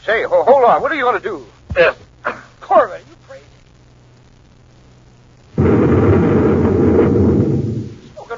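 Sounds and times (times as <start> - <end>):
speech: 0.1 - 3.1
space grenade exploding among rocks in a science-fiction radio drama: 5.5 - 8.2.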